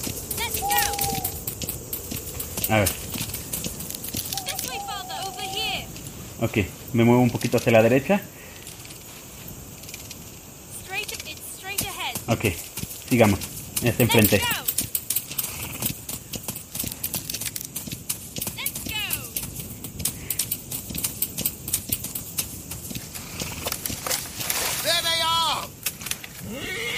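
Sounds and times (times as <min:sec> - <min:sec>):
hoofbeats of a horse galloping in a video game: 0:00.0 - 0:26.9
speech: 0:02.7 - 0:03.1, 0:06.4 - 0:08.4, 0:12.3 - 0:14.6
short horse whinnies: 0:26.4 - 0:26.9.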